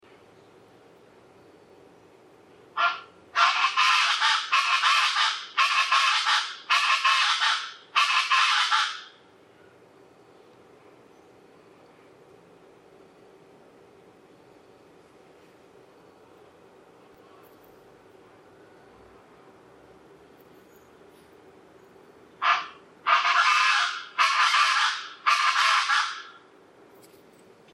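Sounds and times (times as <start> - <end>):
Pantanal chachalaca calling: 2.8 - 9.8, 22.4 - 26.4.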